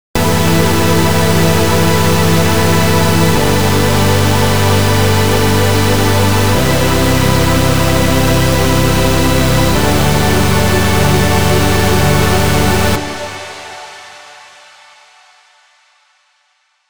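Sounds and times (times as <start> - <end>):
supersaw synth chord: 0.0 - 14.0.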